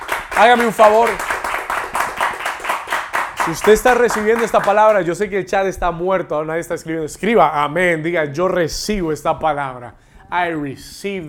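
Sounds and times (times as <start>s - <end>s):
steady rhythmic clapping: 0.0s - 5.6s
speech: 0.4s - 1.3s, 3.4s - 11.2s.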